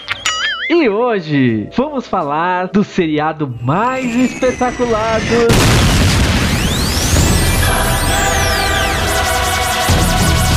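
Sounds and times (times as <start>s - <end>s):
speech: 0.7s - 5.9s
sweeping whistling tones: 3.4s - 10.5s
bomb explosion sound effect: 4.0s - 10.5s.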